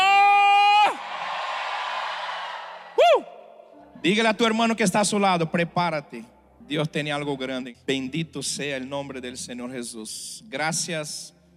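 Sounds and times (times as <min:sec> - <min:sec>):
person shouting for joy at a Christian worship gathering: 0:00.0 - 0:01.0, 0:03.0 - 0:03.4
crowd cheering and yelling at a Christian worship gathering: 0:00.0 - 0:03.6
speech: 0:04.0 - 0:11.4.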